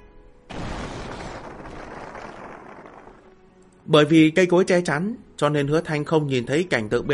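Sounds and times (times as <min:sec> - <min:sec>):
distant explosion from a fierce battle: 0:00.5 - 0:03.6
speech: 0:03.9 - 0:07.1.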